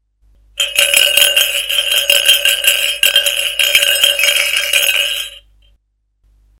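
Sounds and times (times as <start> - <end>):
spoon in a glass: 0.6 - 5.4.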